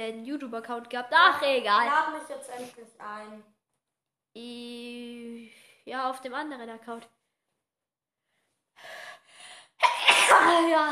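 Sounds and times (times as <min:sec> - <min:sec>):
speech: 0:00.0 - 0:03.6, 0:04.4 - 0:07.2, 0:09.8 - 0:10.9
breathy inhales before an allergy sneeze: 0:08.8 - 0:09.8
allergy sneeze: 0:09.8 - 0:10.8.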